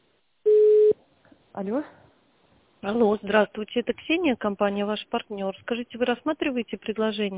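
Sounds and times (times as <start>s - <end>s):
telephone line tones while a call is transferred: 0.5s - 0.9s
speech: 1.6s - 2.0s, 2.9s - 7.3s.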